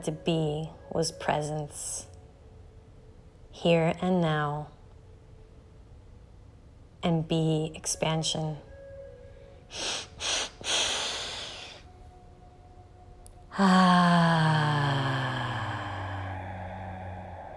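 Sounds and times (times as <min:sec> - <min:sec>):
speech: 0:00.0 - 0:02.1, 0:03.6 - 0:04.8, 0:07.0 - 0:08.7, 0:09.7 - 0:10.8, 0:13.6 - 0:15.2
deep inhaling through the nose in a guided breathing exercise: 0:09.7 - 0:11.9
low sustained tone with slowly falling pitch: 0:13.3 - 0:17.5.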